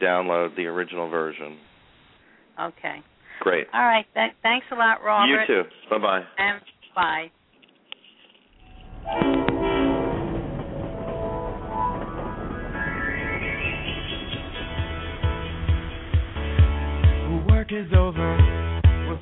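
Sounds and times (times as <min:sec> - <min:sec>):
speech: 0:00.0 - 0:01.8, 0:02.6 - 0:07.4, 0:09.0 - 0:09.4
instrumental theme song intro: 0:08.7 - 0:19.2.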